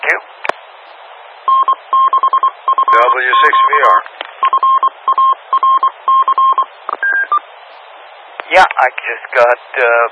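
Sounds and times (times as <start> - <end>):
speech: 0.1 - 0.4, 3.0 - 4.8, 8.5 - 10.1
radio paging relay tones: 1.5 - 7.4.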